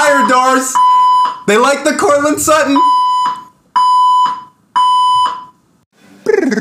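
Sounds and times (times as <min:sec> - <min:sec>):
fire alarm blaring two electronic tones: 0:00.0 - 0:01.5, 0:02.6 - 0:05.6
speech: 0:00.3 - 0:03.0.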